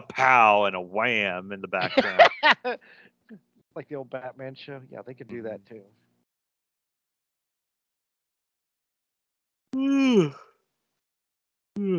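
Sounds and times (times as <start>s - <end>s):
laughter: 0.0s - 2.8s, 3.8s - 5.7s
speech: 0.1s - 6.0s, 9.7s - 10.5s, 11.8s - 11.9s
person yawning: 9.8s - 10.4s.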